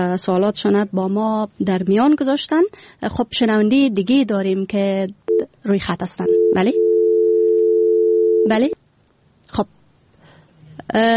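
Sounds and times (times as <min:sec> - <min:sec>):
speech: 0:00.0 - 0:06.8, 0:08.4 - 0:08.8, 0:09.5 - 0:09.8, 0:10.8 - 0:11.1
telephone dial tone after a call is disconnected: 0:06.3 - 0:08.5.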